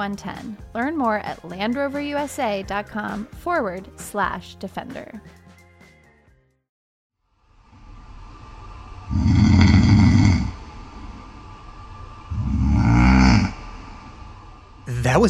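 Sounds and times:
speech: 0:00.0 - 0:05.4, 0:15.1 - 0:15.2
quiet breathing: 0:07.8 - 0:14.9
man snoring loudly in his sleep: 0:09.1 - 0:10.8, 0:12.3 - 0:14.0.

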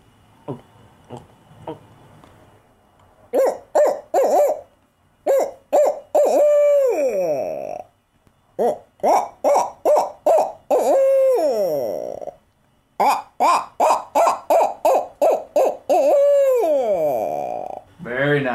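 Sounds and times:
person swallowing air in soft gulping clicks: 0:00.4 - 0:01.8
person imitating owl hoots: 0:00.4 - 0:01.9, 0:03.3 - 0:04.7, 0:05.3 - 0:08.0, 0:08.6 - 0:12.4, 0:13.0 - 0:17.9
speech: 0:00.5 - 0:01.8.

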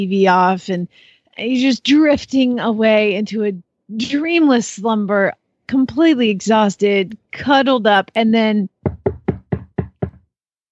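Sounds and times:
speech: 0:00.0 - 0:09.0
knocking on a door: 0:08.8 - 0:10.3.

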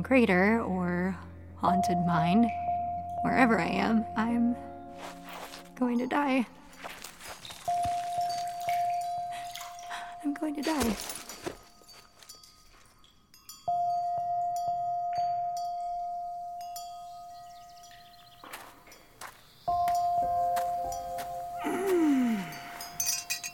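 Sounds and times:
speech: 0:00.0 - 0:02.6, 0:03.2 - 0:07.0, 0:10.2 - 0:11.2
wind chime ringing: 0:05.0 - 0:23.5.

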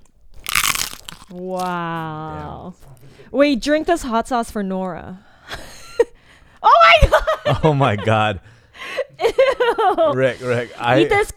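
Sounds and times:
crunch of biting crunchy food: 0:00.0 - 0:01.8
speech: 0:01.3 - 0:05.3, 0:06.7 - 0:11.3
laughter: 0:05.5 - 0:11.3.

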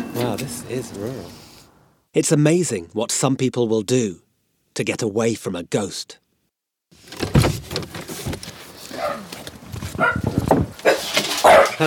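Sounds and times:
speech: 0:00.2 - 0:01.4, 0:02.1 - 0:04.2, 0:04.8 - 0:06.2
rustling and movement noise: 0:06.9 - 0:11.8
dog barking at visitors: 0:08.9 - 0:09.3, 0:10.0 - 0:11.8.

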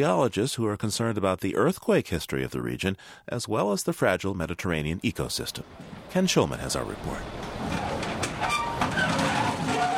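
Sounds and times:
speech: 0:00.0 - 0:08.6
train rolling along rails with a steady loud rumble: 0:05.6 - 0:06.2, 0:06.8 - 0:09.9
sharp clacks from train wheels: 0:07.2 - 0:09.9
faint metallic squeals: 0:07.7 - 0:09.9.

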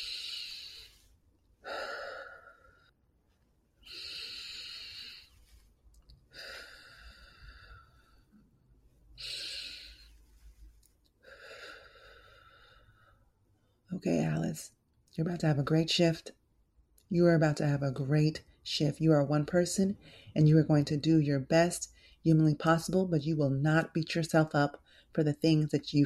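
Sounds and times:
slow deep breaths with hissing inhale and longer exhale: 0:00.0 - 0:03.0, 0:03.8 - 0:13.8, 0:20.0 - 0:20.4, 0:21.9 - 0:22.3, 0:24.8 - 0:25.2
speech: 0:14.0 - 0:16.4, 0:17.1 - 0:26.0.

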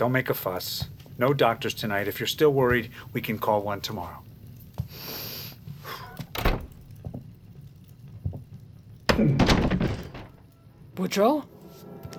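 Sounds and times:
speech: 0:00.0 - 0:04.3, 0:11.0 - 0:11.5
door clunk: 0:06.2 - 0:06.8, 0:09.1 - 0:10.4.

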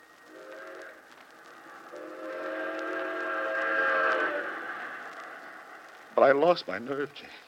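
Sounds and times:
train whistle blowing: 0:00.3 - 0:01.0, 0:02.0 - 0:05.0
rolling rail cars rumbling: 0:01.6 - 0:07.0
speech: 0:06.2 - 0:07.4.

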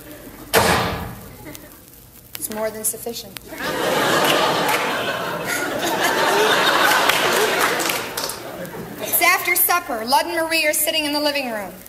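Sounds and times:
loud door slam with a sharp crack: 0:00.5 - 0:01.2
speech: 0:02.5 - 0:04.0, 0:09.8 - 0:11.8
laughter: 0:03.5 - 0:09.3.

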